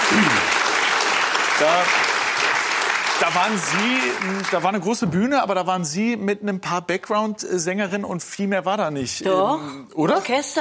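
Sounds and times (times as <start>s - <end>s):
crowd applauding: 0.0s - 5.1s
speech: 0.1s - 0.5s, 1.6s - 2.1s, 3.2s - 10.5s.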